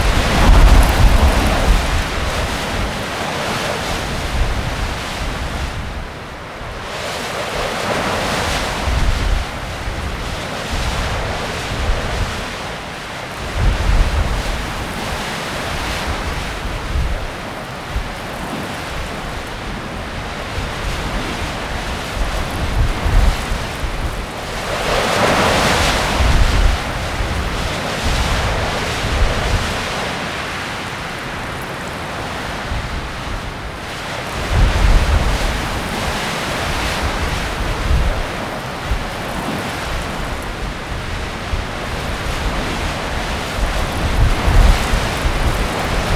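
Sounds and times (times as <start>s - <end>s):
wind: 0.0s - 46.1s.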